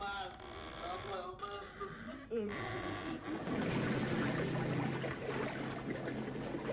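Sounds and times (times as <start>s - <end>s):
speech: 0.1s - 3.6s
bodies plunging into well water, churning and sloshing: 3.2s - 6.7s.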